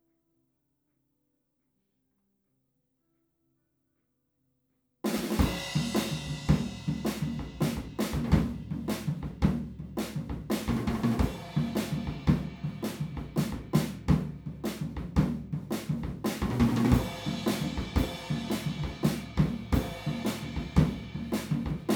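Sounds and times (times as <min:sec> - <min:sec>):
drums recorded with omni PZM microphone: 0:05.1 - 0:21.9.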